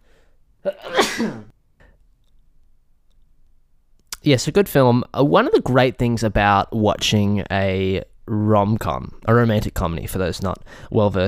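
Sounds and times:
faint breath: 0:00.0 - 0:00.4, 0:10.6 - 0:10.9
sneeze with a sharp intake and breathy burst: 0:00.7 - 0:01.5
speech: 0:01.2 - 0:01.5, 0:04.2 - 0:11.2.

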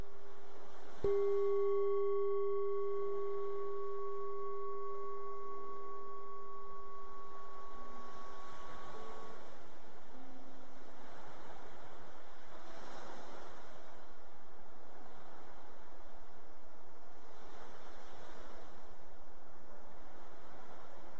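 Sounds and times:
ocean surf waves breaking on the shore: 0:00.0 - 0:21.1.

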